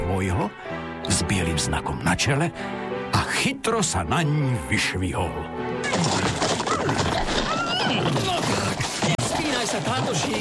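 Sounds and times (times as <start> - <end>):
speech: 0.2 - 6.3, 8.0 - 9.0, 9.7 - 10.4
busy continuous clatter of steppe horse hooves: 5.8 - 10.4
herd of steppe horses whinnying and neighing: 5.8 - 10.4.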